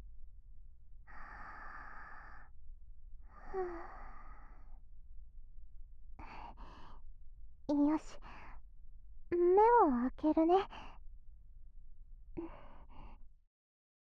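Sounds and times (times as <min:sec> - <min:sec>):
person breathing deeply: 0:01.1 - 0:02.5, 0:03.3 - 0:04.8, 0:12.4 - 0:13.3
speech: 0:03.5 - 0:04.0, 0:07.7 - 0:08.3, 0:09.6 - 0:10.8.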